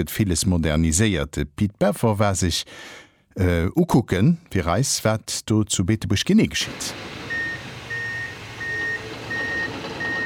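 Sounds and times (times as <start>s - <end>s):
speech: 0.0s - 7.2s
low rumbling truck engine: 6.9s - 10.2s
truck reversing beeps at a construction site: 7.3s - 10.2s.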